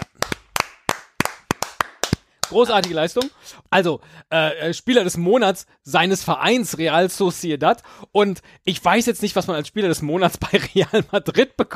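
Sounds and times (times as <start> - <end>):
sharp hand claps: 0.0 - 3.4
speech: 2.5 - 11.7.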